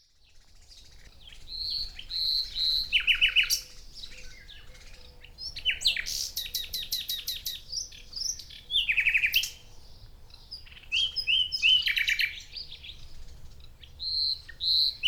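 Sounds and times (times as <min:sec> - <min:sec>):
Common nightingale Luscinia megarhynchos singing: 0:01.5 - 0:13.0.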